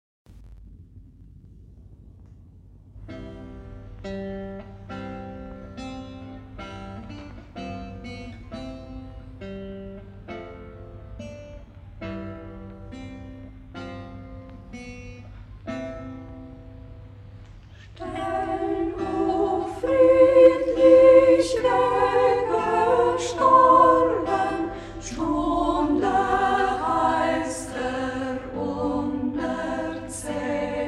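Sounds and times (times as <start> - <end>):
chamber choir singing in Schäßburg local dialect: 18.0 - 30.8.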